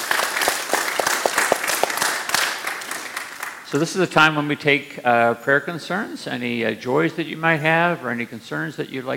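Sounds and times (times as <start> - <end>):
audience applause: 0.0 - 3.7
speech: 3.7 - 9.1.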